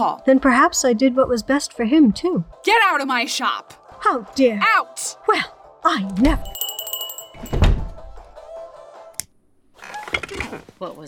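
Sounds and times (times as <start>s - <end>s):
speech: 0.0s - 6.6s, 10.8s - 11.0s
door slamming shut with a heavy booming thud: 7.5s - 8.0s.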